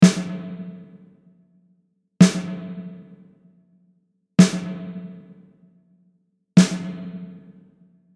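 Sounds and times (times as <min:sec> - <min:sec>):
snare drum with spring reverb: 0:00.0 - 0:01.1, 0:02.2 - 0:03.3, 0:04.4 - 0:05.5, 0:06.6 - 0:07.7.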